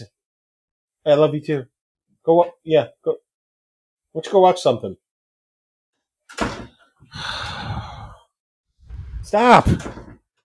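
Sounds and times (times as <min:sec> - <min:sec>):
speech: 0:01.0 - 0:03.2, 0:04.2 - 0:05.0, 0:09.3 - 0:10.0
door shutting with a solid thump: 0:06.3 - 0:06.8, 0:08.9 - 0:10.2
steady rushing scraping noise: 0:08.8 - 0:09.9.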